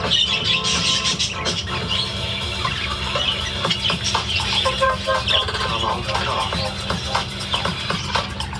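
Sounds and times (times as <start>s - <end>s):
many budgerigars chirping and twittering in an aviary: 0.0s - 8.5s
rhythmic radio music: 0.0s - 8.5s.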